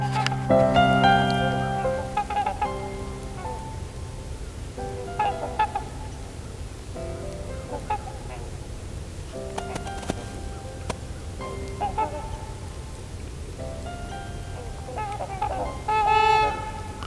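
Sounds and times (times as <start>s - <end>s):
trumpeter swans calling in nasal horn-like honks: 0.0s - 17.0s.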